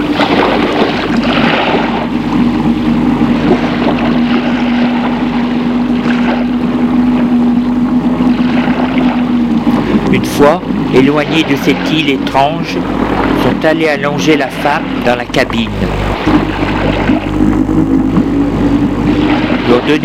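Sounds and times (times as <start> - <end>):
boat engine starting and running in an empty sea port: 0.0 - 20.0
churning water: 0.0 - 20.0
speech: 10.4 - 16.6, 19.8 - 20.0.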